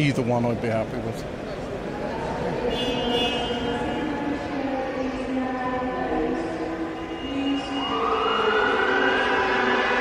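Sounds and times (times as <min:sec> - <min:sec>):
speech: 0:00.0 - 0:01.4
busy crowd murmur: 0:00.6 - 0:09.9
car horns blaring in a large exhibition hall: 0:02.6 - 0:04.2
wailing sirens in a large exhibition hall: 0:07.5 - 0:09.9.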